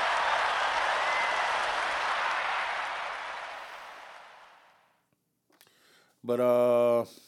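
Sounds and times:
crowd applause: 0.0 - 4.8
speech: 6.3 - 7.2.

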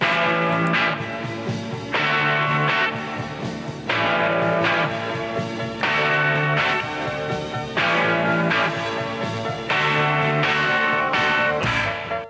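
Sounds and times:
rhythm guitar strumming chords: 0.0 - 12.2.

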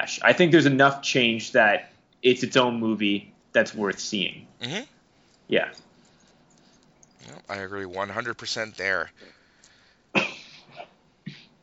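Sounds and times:
speech: 0.1 - 4.9, 5.5 - 5.9, 7.2 - 9.4
person coughing: 4.6 - 4.8, 10.2 - 11.5.

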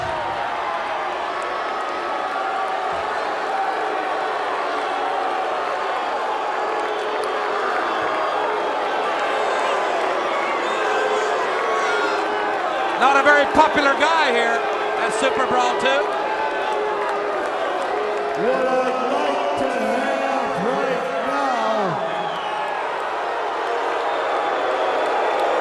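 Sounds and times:
scattered shouts from an arena crowd: 0.0 - 19.9
large arena crowd booing a wrestler at a wrestling event: 0.0 - 25.5
speech: 13.4 - 16.2.

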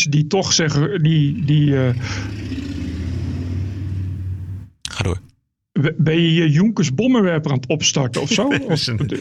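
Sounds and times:
speech: 0.0 - 2.6, 5.0 - 9.1
heavy motor vehicle rumbling past: 1.1 - 4.8
laughter: 8.1 - 9.1.

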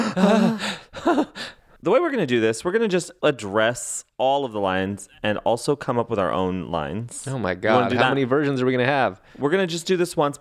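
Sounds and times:
person giving a short voiced gasp: 0.0 - 1.8
speech: 0.2 - 10.3.

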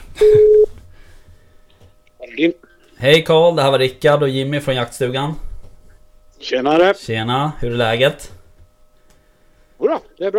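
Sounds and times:
steady electronic telephone tone: 0.2 - 0.8
speech: 2.4 - 5.5, 6.4 - 8.4, 9.8 - 10.3.

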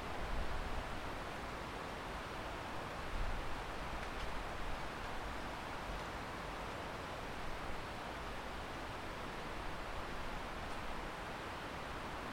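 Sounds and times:
winter wind rushing through valley trees: 0.0 - 12.3.

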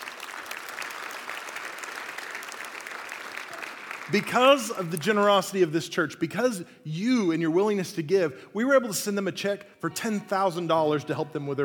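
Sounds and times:
large crowd applauding: 0.0 - 4.9
speech: 4.1 - 11.6.

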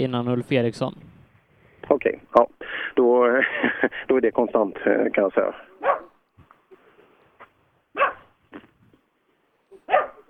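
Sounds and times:
speech: 0.0 - 1.1, 2.0 - 6.0
laughter: 3.0 - 5.4
dog barking: 5.8 - 6.2, 7.9 - 8.4, 9.8 - 10.2
shuffling noises: 6.3 - 10.2.

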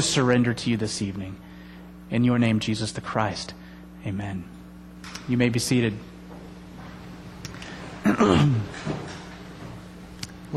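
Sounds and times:
speech: 0.0 - 1.5, 2.1 - 6.1, 8.0 - 9.2
low steady hum: 0.0 - 10.5
door opening quietly in a large room: 8.6 - 9.9.

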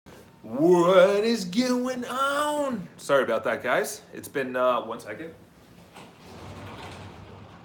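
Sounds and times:
speech: 0.5 - 5.5
sliding door rumbling along its track: 5.8 - 7.6.

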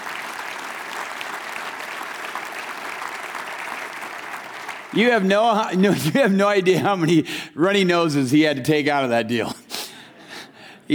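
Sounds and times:
room full of people clapping: 0.0 - 5.6
speech: 4.9 - 9.6.

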